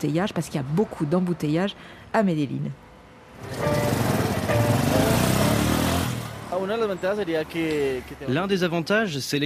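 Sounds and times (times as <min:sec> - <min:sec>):
speech: 0:00.0 - 0:02.8, 0:06.6 - 0:09.4
motorcycle engine roaring in Medellín: 0:03.4 - 0:06.5.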